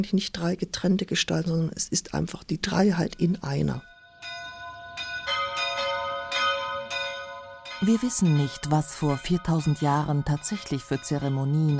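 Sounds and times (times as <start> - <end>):
speech: 0.0 - 3.9, 7.8 - 11.7
chapel church bells ringing: 3.5 - 11.7.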